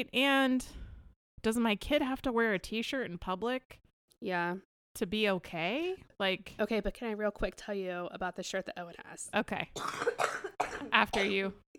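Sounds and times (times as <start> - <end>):
speech: 0.0 - 0.8, 1.4 - 11.6
harsh coughing fit with wheezy catch: 9.8 - 11.5.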